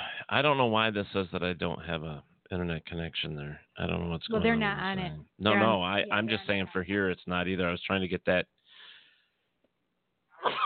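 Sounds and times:
faint breathy hiss: 0.0s - 0.5s, 8.6s - 9.5s
speech: 0.3s - 8.6s
sharp intake of breath: 8.7s - 9.3s
loud sneeze: 10.4s - 10.6s.

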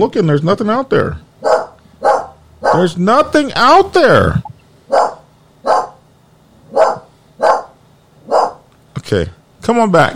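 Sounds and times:
speech: 0.0s - 1.3s, 2.8s - 5.0s, 9.1s - 10.1s
big dog barking at the front door: 1.4s - 3.0s, 4.9s - 6.0s, 6.7s - 8.7s.

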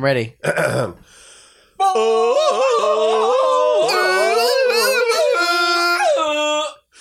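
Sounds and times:
speech: 0.0s - 1.2s, 1.8s - 3.4s
person imitating a warbling yodel-like jungle yell: 1.8s - 6.8s.

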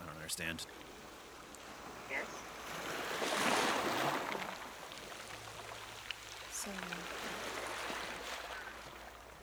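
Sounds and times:
ocean waves: 0.0s - 9.4s
speech: 0.3s - 0.9s, 2.1s - 2.9s, 6.6s - 7.2s.

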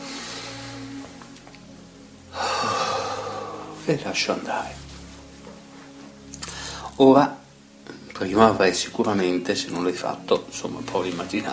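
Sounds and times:
deep inhale during a guided exercise for a headache: 2.3s - 3.8s, 6.4s - 7.0s
speech: 3.9s - 4.8s, 7.0s - 7.4s, 8.2s - 11.5s.

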